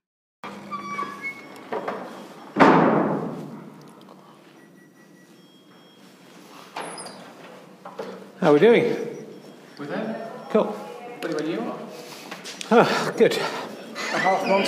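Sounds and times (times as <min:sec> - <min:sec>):
backstage door giving a whiny squeaky creak: 0:00.4 - 0:04.0, 0:06.8 - 0:08.2
speech: 0:08.4 - 0:09.1, 0:09.8 - 0:10.8, 0:12.7 - 0:14.6
laughter: 0:12.7 - 0:14.6.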